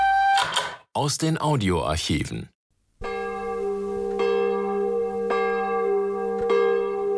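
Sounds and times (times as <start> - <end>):
speech: 1.0 - 2.6
large church bell tolling: 3.0 - 7.1.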